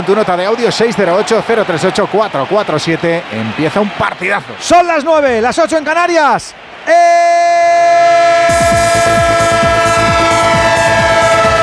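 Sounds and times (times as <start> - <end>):
speech: 0.0 - 8.1
train horn sounding a multi-toned chord: 8.0 - 11.6.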